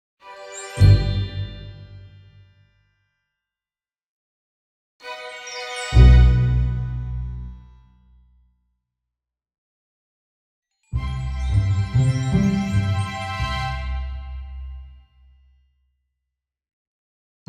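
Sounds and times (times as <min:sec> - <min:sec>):
positive orchestral jingle: 0:00.7 - 0:02.0, 0:05.9 - 0:07.4, 0:11.0 - 0:14.3.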